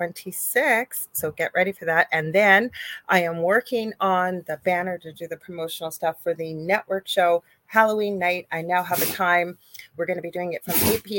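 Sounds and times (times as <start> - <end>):
speech: 0.0 - 11.1
dog sneezing: 9.0 - 9.2, 10.7 - 11.0.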